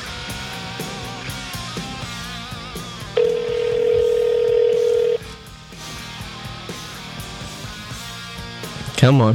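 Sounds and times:
rhythmic music: 0.0s - 9.0s
telephone ringing tone: 3.2s - 5.3s
speech: 9.0s - 9.3s.

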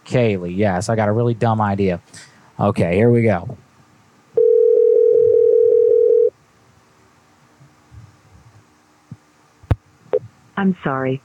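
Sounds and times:
speech: 0.1s - 3.6s, 10.6s - 11.2s
telephone call tone while dialing out: 4.4s - 6.3s.

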